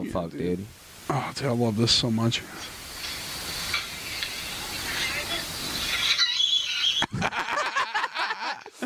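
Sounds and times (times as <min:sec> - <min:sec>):
speech: 0:00.0 - 0:02.8
hissy noisy background: 0:00.0 - 0:08.8
shrill high-pitched scream from a played prank video: 0:04.4 - 0:07.1
people laughing: 0:07.0 - 0:08.8.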